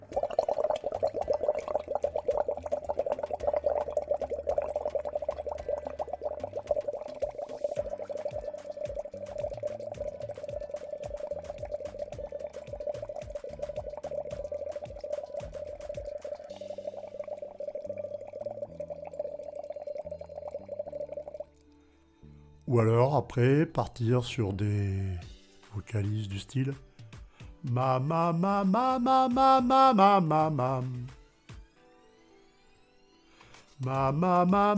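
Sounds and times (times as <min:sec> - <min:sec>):
bubbling from a small straw blown into a half-full glass of water: 0:00.0 - 0:21.6, 0:33.8 - 0:34.7
speech: 0:22.7 - 0:25.3, 0:25.9 - 0:26.9, 0:27.6 - 0:31.0, 0:33.8 - 0:34.7.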